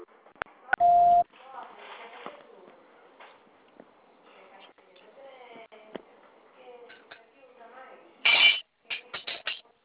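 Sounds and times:
touch-tone dialing beeps as a telephone call is transferred: 0.8 - 1.2.

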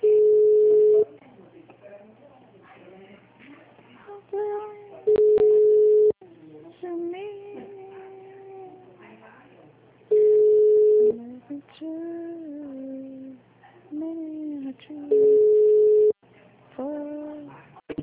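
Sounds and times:
telephone ringing tone: 0.0 - 1.1, 5.1 - 6.2, 10.1 - 11.1, 15.1 - 16.1.

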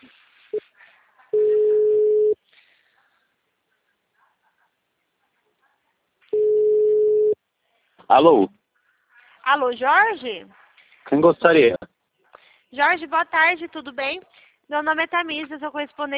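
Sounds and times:
faint noise: 0.0 - 16.1
ringback tone of an outgoing phone call: 1.4 - 2.4, 6.4 - 7.4
speech: 8.1 - 8.6, 9.5 - 11.9, 12.7 - 16.1.

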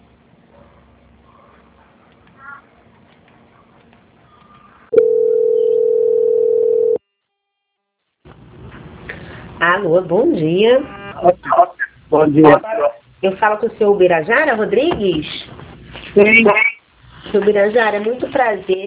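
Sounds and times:
steady telephone line tone during call transfer: 4.9 - 7.1
speech: 9.8 - 15.4, 16.2 - 16.7, 17.3 - 18.8.

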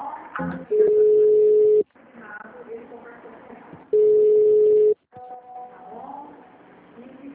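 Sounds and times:
telephone ringback tones calling a bank's customer service line: 0.8 - 1.8, 4.0 - 5.0.

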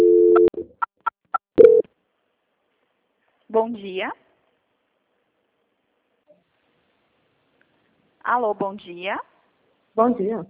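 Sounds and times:
telephone line tone during a call transfer: 0.0 - 0.5
speech: 3.6 - 4.2, 8.3 - 9.3, 10.0 - 10.4.

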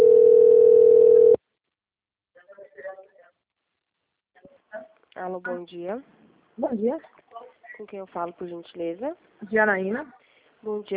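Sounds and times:
telephone dial tone after a call hangs up: 0.0 - 1.4
speech: 5.2 - 7.2, 7.8 - 10.9.

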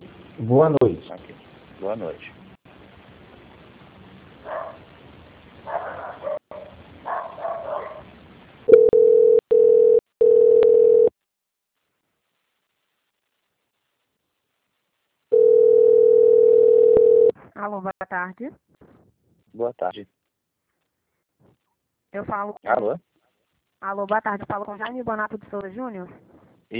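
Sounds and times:
speech: 0.4 - 2.4, 17.7 - 18.9, 19.6 - 20.2, 22.1 - 23.1, 23.8 - 26.7
telephone line tone while a call is transferred: 8.7 - 11.1, 15.3 - 17.3.

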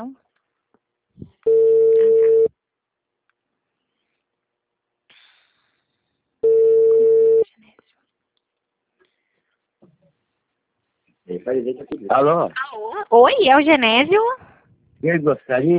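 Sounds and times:
telephone ringback tone on an outgoing call: 1.5 - 2.5, 6.4 - 7.4
speech: 11.4 - 14.4, 15.0 - 15.7.

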